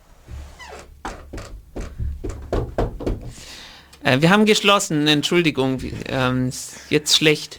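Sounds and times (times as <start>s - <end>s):
knocking on a door: 0.2s - 3.5s
speech: 4.0s - 7.5s.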